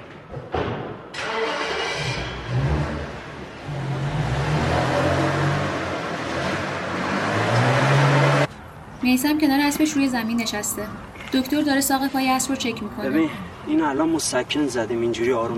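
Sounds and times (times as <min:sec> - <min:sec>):
car starting up and pulling away in a hurry: 0:01.1 - 0:08.5
speech: 0:09.0 - 0:15.5.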